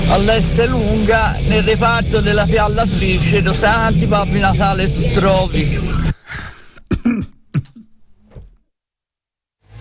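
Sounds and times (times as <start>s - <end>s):
speech: 0.1s - 6.1s
person coughing after choking on water: 6.1s - 8.6s
throat clearing: 6.1s - 8.6s.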